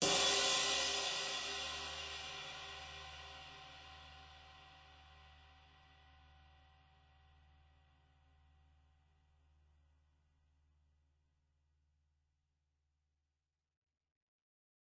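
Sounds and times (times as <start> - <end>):
dark crash cymbal on a real live drum kit: 0.0 - 6.7.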